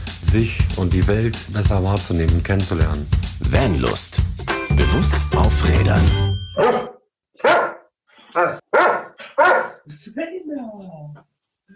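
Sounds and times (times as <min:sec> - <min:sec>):
speech: 0:00.3 - 0:06.9
dog barking: 0:06.6 - 0:09.9.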